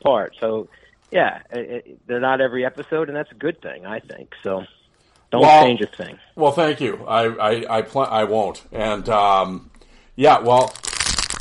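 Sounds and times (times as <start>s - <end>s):
speech: 0.0s - 10.9s
packs of hockey cards being handled and opened: 10.4s - 11.3s.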